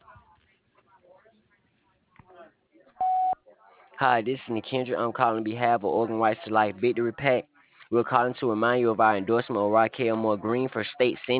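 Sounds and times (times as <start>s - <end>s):
voicemail beep: 3.0s - 3.4s
speech: 4.0s - 11.3s.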